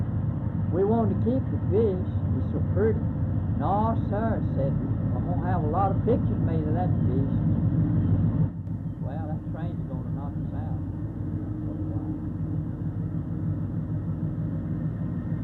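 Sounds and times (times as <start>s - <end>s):
train with seven engines passing: 0.0s - 15.4s
voices talking: 0.7s - 3.0s, 3.6s - 7.5s, 9.0s - 12.5s
speech: 0.7s - 7.7s.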